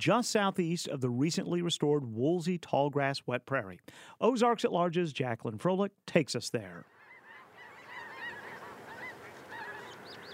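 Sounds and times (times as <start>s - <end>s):
speech: 0.0s - 6.9s
huge flock of snow geese honking overhead on a drizzly autumn morning: 6.8s - 10.3s.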